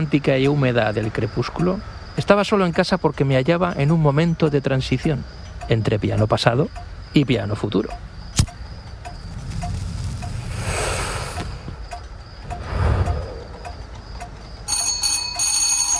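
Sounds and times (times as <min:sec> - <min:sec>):
speech: 0:00.0 - 0:08.0
steady ticking in a room: 0:00.0 - 0:15.9
doorbell ringing: 0:14.7 - 0:15.9.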